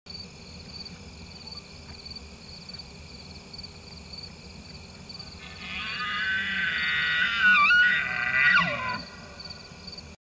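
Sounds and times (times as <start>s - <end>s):
elk: 4.6s - 9.4s.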